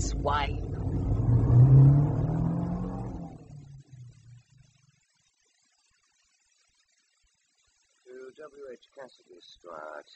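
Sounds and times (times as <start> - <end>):
speech: 0.0 - 0.9, 8.7 - 10.1
car engine revving while driving: 0.0 - 4.6.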